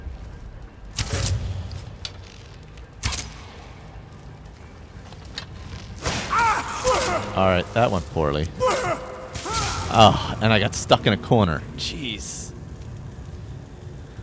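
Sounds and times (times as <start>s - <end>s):
low hum: 0.0s - 14.2s
video game poison-tipped arrows whooshing: 1.0s - 2.2s, 3.0s - 10.4s
speech: 7.4s - 8.6s, 9.9s - 12.4s.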